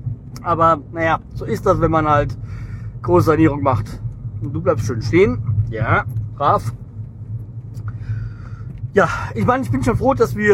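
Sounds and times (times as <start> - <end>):
car engine rumble while driving: 0.0 - 10.5
road noise: 0.0 - 10.5
speech: 0.4 - 6.8, 9.0 - 10.5.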